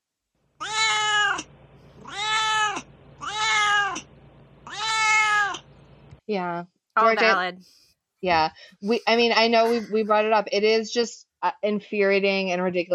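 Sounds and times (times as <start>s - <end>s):
cat meowing: 0.6s - 1.4s, 2.0s - 4.0s, 4.7s - 5.6s
speech: 6.3s - 12.9s.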